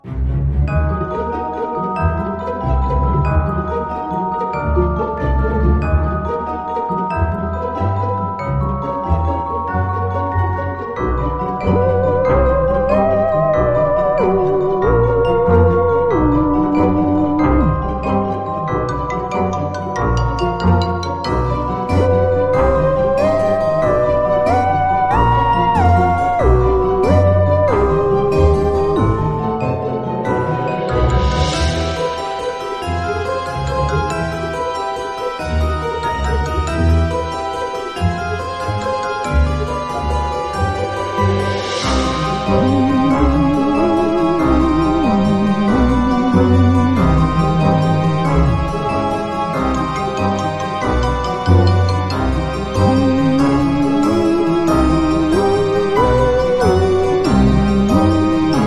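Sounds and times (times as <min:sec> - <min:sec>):
background theme music: 0:00.0 - 0:58.6.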